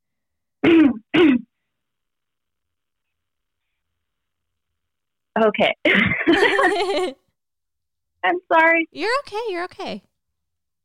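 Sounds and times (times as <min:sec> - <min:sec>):
rough voiced throat-clearing coughs: 0:00.6 - 0:01.5, 0:05.9 - 0:06.4
speech: 0:05.4 - 0:07.2, 0:08.2 - 0:10.1
laughter: 0:06.2 - 0:07.2.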